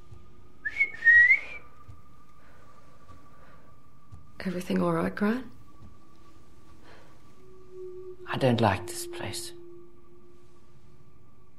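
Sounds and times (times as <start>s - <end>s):
woman whistling in front of a walk-in wardrobe: 0.6s - 1.9s
speech: 4.4s - 5.6s, 8.4s - 9.6s.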